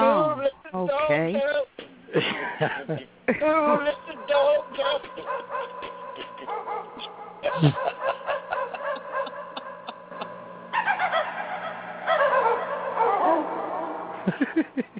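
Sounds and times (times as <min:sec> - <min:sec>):
steady underlying hum: 0:00.0 - 0:14.9
speech: 0:00.8 - 0:05.6, 0:07.6 - 0:07.9
laughter: 0:02.1 - 0:11.3, 0:14.2 - 0:14.9
electronic dog barks and yips played from a keyboard: 0:03.9 - 0:14.3.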